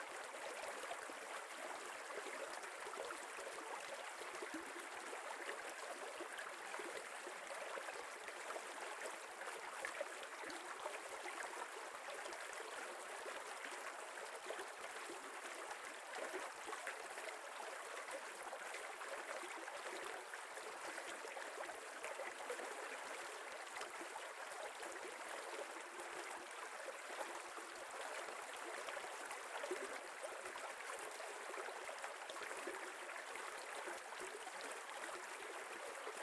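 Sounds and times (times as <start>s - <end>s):
creek flowing: 0.0s - 36.2s.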